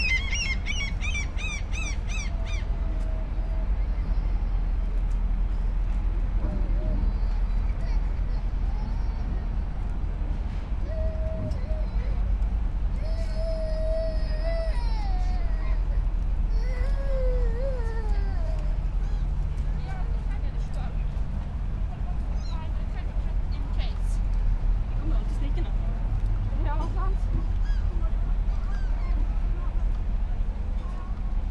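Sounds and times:
steady low rumble of water and engines at a pier: 0:00.0 - 0:31.5
faint voices on a pier: 0:06.4 - 0:31.5.

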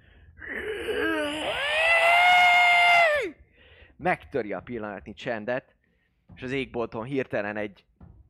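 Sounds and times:
otherworldly eerie scream: 0:00.4 - 0:03.4
speech: 0:04.0 - 0:07.9.

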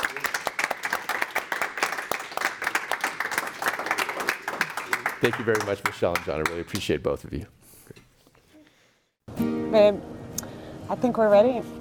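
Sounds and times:
audience applauding: 0:00.0 - 0:06.7
speech: 0:05.2 - 0:07.6, 0:09.7 - 0:10.1, 0:10.9 - 0:11.7.

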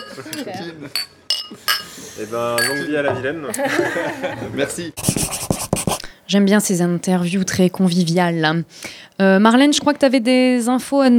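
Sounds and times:
laughter: 0:00.0 - 0:01.0, 0:03.4 - 0:05.0
glasses clinking together in a toast: 0:00.0 - 0:02.0, 0:02.6 - 0:03.3
speech: 0:00.2 - 0:05.3, 0:06.3 - 0:11.1.

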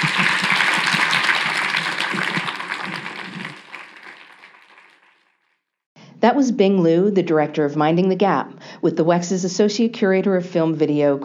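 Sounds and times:
crowd applause with dense overlapping claps: 0:00.0 - 0:05.2
speech: 0:06.2 - 0:11.2.

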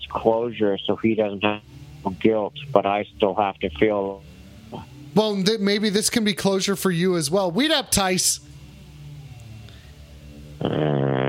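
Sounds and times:
speech: 0:00.1 - 0:08.5, 0:10.6 - 0:11.0
fart sound: 0:10.6 - 0:11.2.

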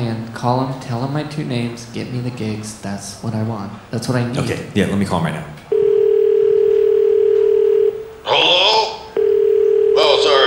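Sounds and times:
speech: 0:00.4 - 0:05.6
phone line tone: 0:05.7 - 0:10.4
voice speaking over a phone line: 0:08.2 - 0:09.0, 0:09.9 - 0:10.4.

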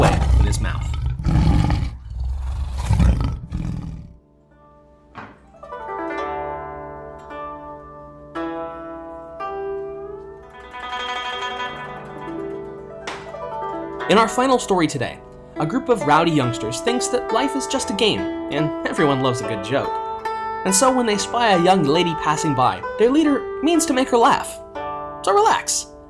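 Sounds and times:
tiger roaring: 0:00.0 - 0:04.2
ringing musical notes: 0:04.6 - 0:26.0
speech: 0:14.1 - 0:20.0, 0:20.6 - 0:24.6, 0:25.2 - 0:25.9.

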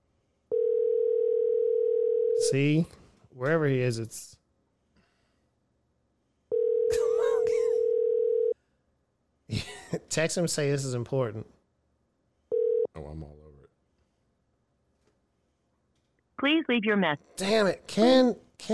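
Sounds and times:
phone outgoing ringing tone heard through a handset: 0:00.5 - 0:02.5, 0:06.5 - 0:08.6, 0:12.5 - 0:12.9
speech: 0:02.5 - 0:04.4, 0:09.9 - 0:11.6, 0:13.0 - 0:13.4, 0:16.4 - 0:18.7.

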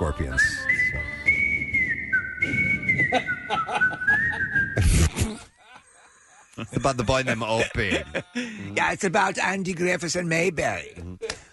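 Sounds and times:
speech: 0:00.0 - 0:01.0, 0:06.6 - 0:11.1
person whistling a slow clear melody: 0:00.3 - 0:04.9
laughter: 0:03.0 - 0:08.9.

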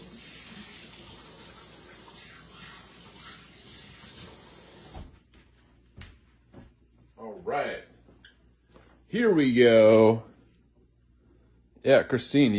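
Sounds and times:
tap water running over hands being washed: 0:00.0 - 0:05.2
speech: 0:09.1 - 0:10.3, 0:11.8 - 0:12.5.

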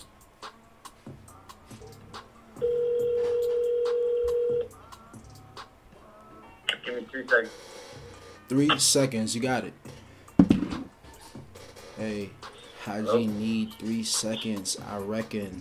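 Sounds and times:
steady electronic tone of phone call being placed: 0:02.6 - 0:04.7
speech: 0:07.3 - 0:07.7, 0:08.5 - 0:09.9, 0:12.0 - 0:15.5.

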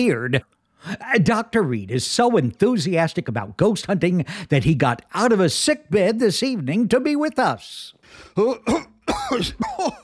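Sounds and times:
speech: 0:00.0 - 0:10.0
man with damaged lungs clearing his throat: 0:08.4 - 0:10.0
man with damaged lungs coughing: 0:08.4 - 0:10.0.

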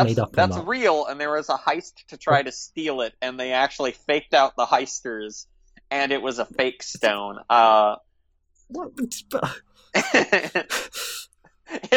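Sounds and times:
speech: 0:00.0 - 0:08.1, 0:08.7 - 0:11.9
laughter: 0:09.0 - 0:11.9
person breathing heavily with ragged gasps and huffs: 0:10.5 - 0:11.3.

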